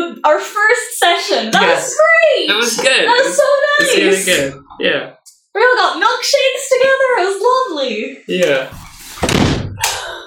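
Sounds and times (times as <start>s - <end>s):
speech: 0.1s - 9.5s
door with loose low-resistance hinges slamming shut: 8.7s - 9.9s.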